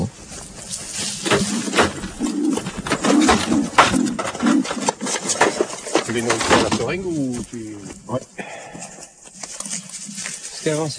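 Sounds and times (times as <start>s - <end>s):
rustling and flutter noise: 0.0s - 8.1s, 8.8s - 10.9s
wood pigeons cooing: 1.1s - 6.4s
speech: 6.2s - 8.6s, 10.6s - 10.9s.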